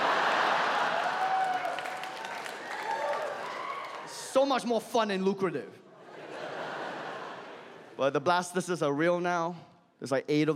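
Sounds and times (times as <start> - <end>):
laughter: 0.0 - 1.4, 6.0 - 8.0
stand-up comedy audience clapping and cheering in America: 0.0 - 4.3
speech: 4.4 - 5.8, 8.0 - 10.5.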